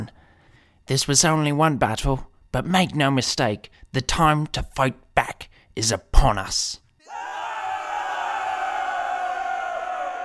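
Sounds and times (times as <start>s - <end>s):
speech: 0.9s - 7.3s
large crowd roaring and cheering: 7.0s - 10.2s.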